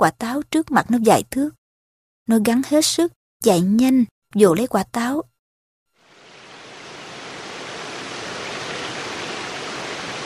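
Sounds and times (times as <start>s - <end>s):
speech: 0.0s - 1.6s, 2.3s - 5.3s
clear stream flowing through a dense forest: 6.0s - 10.2s.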